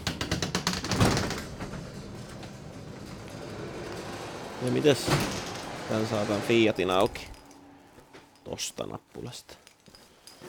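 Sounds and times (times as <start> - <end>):
garage door rattling on a snowy day: 0.0 - 7.6
speech: 4.6 - 7.4, 8.6 - 9.6.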